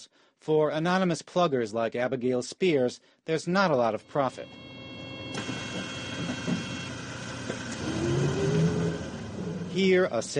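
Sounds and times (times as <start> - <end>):
speech: 0.0 - 4.8, 9.8 - 10.3
tournament bus engine droning from inside the vehicle: 4.5 - 10.2.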